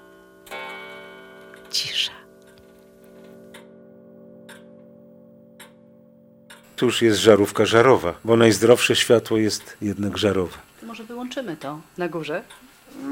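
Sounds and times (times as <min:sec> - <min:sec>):
pendulum clock ticking: 0:00.0 - 0:12.8
speech: 0:01.7 - 0:02.2, 0:06.8 - 0:13.1.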